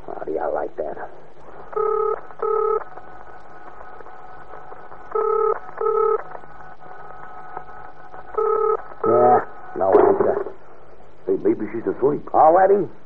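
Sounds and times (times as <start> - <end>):
faint steady hum: 0.0 - 13.0
speech: 0.3 - 2.9, 11.6 - 13.0
touch-tone beeps of a telephone being dialed: 1.8 - 2.8, 5.1 - 6.2, 8.4 - 9.3.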